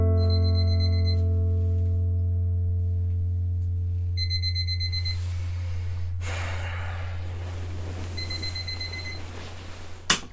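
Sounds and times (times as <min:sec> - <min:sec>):
bedside alarm clock beeping in the morning: 0:00.2 - 0:01.5, 0:04.2 - 0:05.3, 0:08.2 - 0:09.4
low hum: 0:00.2 - 0:10.0.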